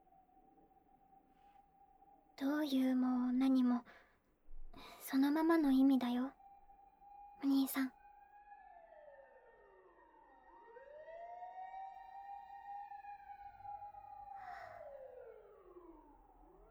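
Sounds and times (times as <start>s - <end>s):
speech: 2.4s - 4.0s, 4.8s - 6.4s, 7.4s - 8.0s
fire engine sirens wailing outside, heading up a mountain to a fire: 8.3s - 16.7s.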